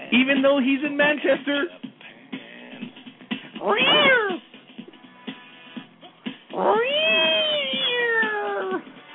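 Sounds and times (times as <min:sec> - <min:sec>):
speech: 0:00.1 - 0:01.8, 0:03.6 - 0:04.4
cat meowing: 0:03.6 - 0:04.4, 0:06.5 - 0:08.8.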